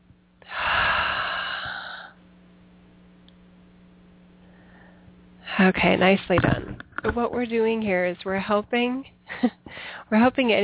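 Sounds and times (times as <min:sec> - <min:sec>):
deep inhalation during a guided breathing exercise: 0:00.4 - 0:02.2, 0:04.4 - 0:05.1
speech: 0:05.6 - 0:10.6.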